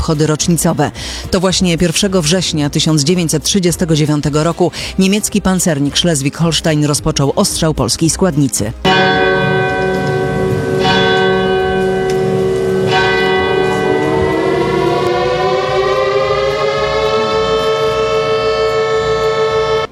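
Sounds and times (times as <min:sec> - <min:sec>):
speech: 0:00.0 - 0:09.2
air-raid siren wailing: 0:08.9 - 0:19.9
ringing bell strikes: 0:08.9 - 0:19.9.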